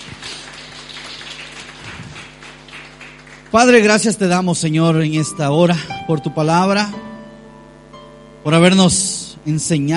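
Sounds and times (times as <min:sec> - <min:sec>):
audience applauding: 0:00.0 - 0:04.1
faint low electrical hum: 0:00.0 - 0:09.9
speech: 0:03.5 - 0:07.1, 0:08.4 - 0:09.9.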